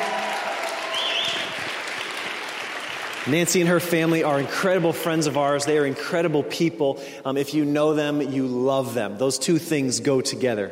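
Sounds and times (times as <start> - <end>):
whistle or cheer: 0.0 - 1.8
church audience applauding to welcome a speaker: 0.0 - 4.4
speech: 3.2 - 10.7.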